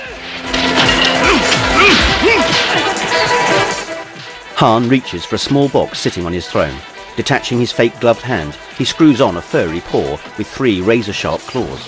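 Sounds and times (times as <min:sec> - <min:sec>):
wooden stave shattering during a fight: 0:00.4 - 0:03.0
speech: 0:04.6 - 0:11.8.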